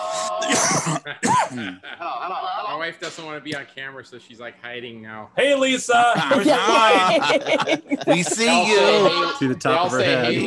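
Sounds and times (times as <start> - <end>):
harsh coughing: 0.4 - 1.8
speech: 0.5 - 10.4
laughter: 1.0 - 2.7, 6.1 - 10.4.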